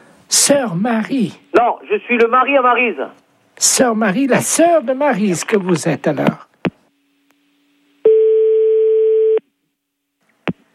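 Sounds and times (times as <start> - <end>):
speech: 0.5 - 6.4
telephone line tone after a call is cut off: 8.0 - 9.5.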